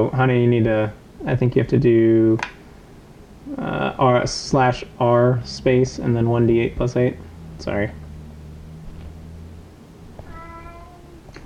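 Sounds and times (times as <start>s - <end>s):
speech: 0.0s - 2.6s, 3.4s - 8.0s
steady low hum: 0.0s - 11.4s
cat meowing: 10.2s - 11.3s.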